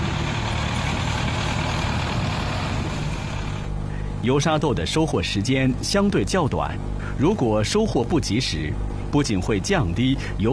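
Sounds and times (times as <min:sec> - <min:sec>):
transport truck engine drone in a field: 0:00.0 - 0:10.5
speech: 0:04.2 - 0:10.5.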